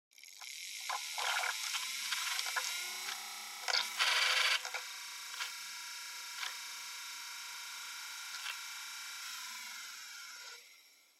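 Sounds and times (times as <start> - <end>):
portable MD player drive noise during playback: 0.4 - 5.6, 8.2 - 9.7.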